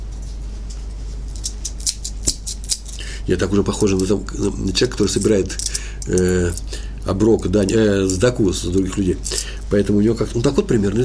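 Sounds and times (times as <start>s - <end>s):
keys jingling: 1.3s - 3.0s, 5.0s - 6.7s
speech: 3.2s - 11.0s.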